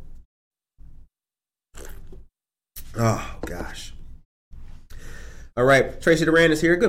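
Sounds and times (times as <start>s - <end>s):
loud slurping sips of hot coffee: 1.7s - 3.0s
speech: 3.0s - 4.0s, 5.6s - 6.8s.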